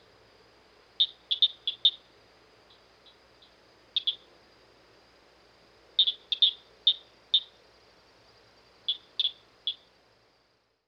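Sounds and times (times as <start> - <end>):
southern cricket frog clicking calls: 1.0 - 2.1, 2.7 - 4.3, 6.0 - 7.6, 8.9 - 9.9.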